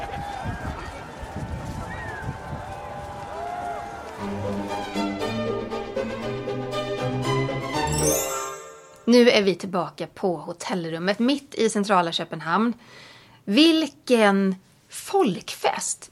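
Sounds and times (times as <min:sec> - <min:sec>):
faint clattering hooves: 0:00.0 - 0:04.6
large outdoor crowd cheering and roaring at royal procession: 0:00.0 - 0:05.4
band playing: 0:04.2 - 0:09.1
speech: 0:09.1 - 0:16.0.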